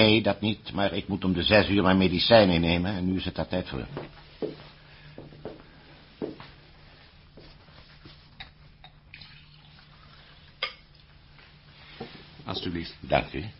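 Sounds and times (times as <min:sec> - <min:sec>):
speech: 0:00.0 - 0:04.6, 0:12.7 - 0:13.5
tap water running into a drinking glass: 0:08.8 - 0:11.1.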